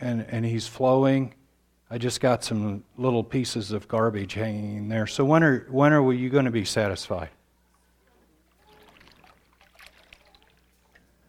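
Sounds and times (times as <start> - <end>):
speech: 0.0 - 7.4
water pouring into a container: 8.5 - 11.1.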